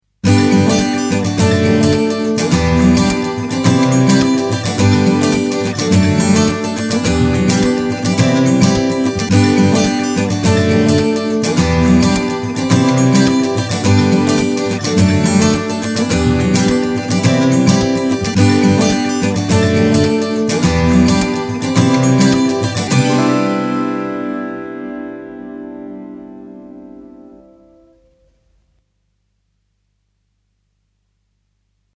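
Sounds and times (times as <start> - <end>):
acoustic guitar run: 0.1 - 28.7.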